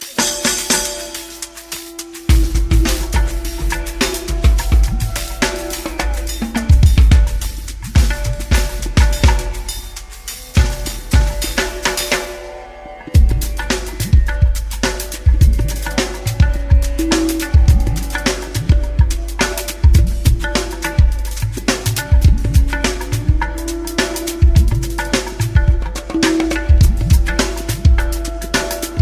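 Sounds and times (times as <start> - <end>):
tabla beat: 0.0 - 29.0.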